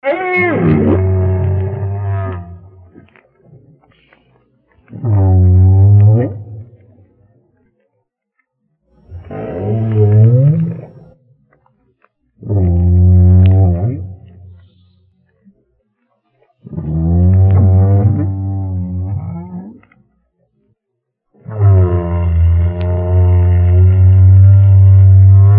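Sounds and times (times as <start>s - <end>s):
whale in Australia: 0.0s - 4.2s, 4.8s - 7.1s, 9.0s - 11.2s, 12.4s - 15.4s, 16.6s - 20.0s, 21.4s - 25.5s.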